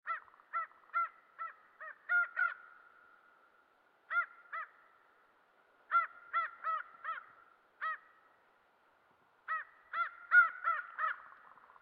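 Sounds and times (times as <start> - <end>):
crow calls: 0.0 - 3.2, 4.1 - 5.1, 5.9 - 8.3, 9.5 - 11.8.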